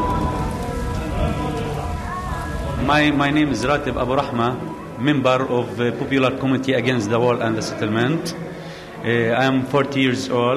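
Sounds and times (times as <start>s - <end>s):
hail pattering and drumming on surfaces: 0.0s - 4.8s
steady dense rain: 0.0s - 9.0s
speech: 2.9s - 8.4s, 9.0s - 10.5s.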